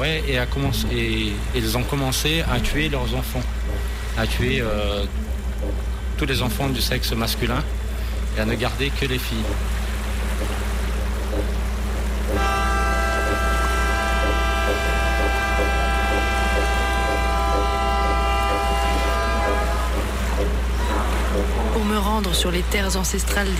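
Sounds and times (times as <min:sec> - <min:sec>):
rushing river water: 0:00.0 - 0:23.5
steady rumble of a boat engine: 0:00.0 - 0:23.5
speech: 0:00.1 - 0:07.8, 0:08.4 - 0:09.8, 0:21.9 - 0:23.5
boat's deep horn blast on a river: 0:12.2 - 0:21.4.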